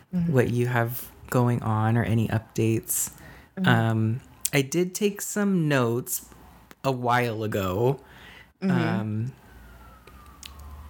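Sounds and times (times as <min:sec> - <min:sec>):
speech: 0:00.1 - 0:09.4
emergency vehicle siren outside: 0:08.8 - 0:10.8.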